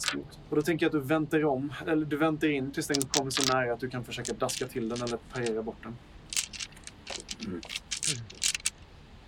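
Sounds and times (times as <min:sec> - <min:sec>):
handful of about ten dice rolled for a parry, clattering: 0:00.0 - 0:00.2, 0:02.9 - 0:03.6, 0:04.2 - 0:05.6, 0:06.3 - 0:08.8
speech: 0:00.0 - 0:06.3, 0:07.4 - 0:08.2.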